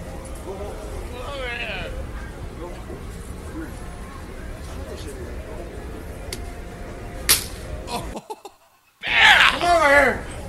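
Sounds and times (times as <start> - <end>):
noisy crowded background: 0.0 - 10.4
bouncer's open-hand slap to a kid's face: 7.3 - 7.6
laughter: 7.9 - 10.0
loud excited voices shouting: 9.0 - 10.3.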